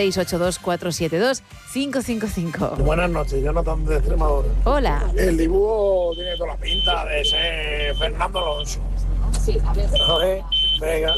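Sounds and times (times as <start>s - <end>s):
speech: 0.0s - 11.1s
low engine-like rumble: 2.8s - 11.1s
shrill electronic alarm beeps: 6.0s - 8.8s, 9.9s - 11.1s.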